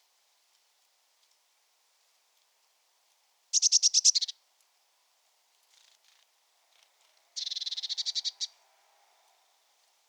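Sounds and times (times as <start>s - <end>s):
Eurasian blue tit Cyanistes caeruleus churring: 3.6s - 4.3s, 7.4s - 8.5s.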